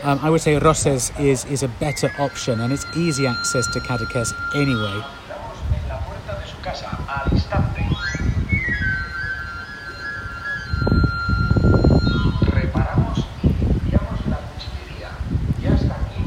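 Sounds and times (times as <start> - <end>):
speech: 0.0 - 5.3
busy street: 0.0 - 16.2
knife sharpener's pan pipe whistle: 1.3 - 5.6, 7.8 - 12.8.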